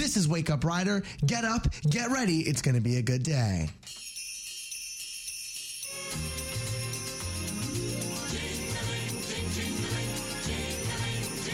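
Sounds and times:
speech: 0.1s - 4.0s
sleigh bells jingling: 3.8s - 11.5s.

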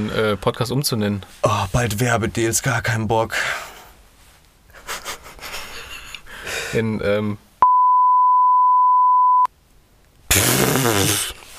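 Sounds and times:
speech: 0.0s - 3.7s, 6.7s - 7.4s, 10.3s - 11.3s
censor bleep tone: 7.6s - 9.5s.

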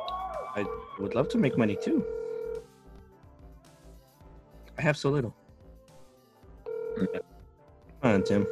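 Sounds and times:
speech: 0.6s - 2.2s, 4.8s - 5.4s, 7.0s - 7.3s, 8.0s - 8.4s
phone call ringing out: 0.6s - 2.6s, 6.7s - 7.2s, 8.0s - 8.4s.

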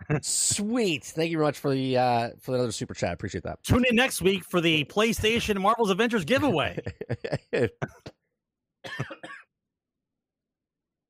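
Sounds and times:
speech: 0.1s - 8.1s
laughter: 5.1s - 8.1s
raspy throat-clearing: 6.7s - 8.1s, 8.9s - 9.4s
person coughing: 8.8s - 9.5s.

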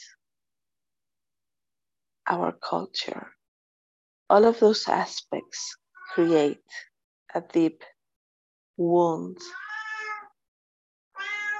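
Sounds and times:
speech: 2.3s - 3.4s, 4.3s - 7.9s, 8.8s - 9.7s
cat meowing at the door: 9.5s - 10.4s, 11.2s - 11.5s.

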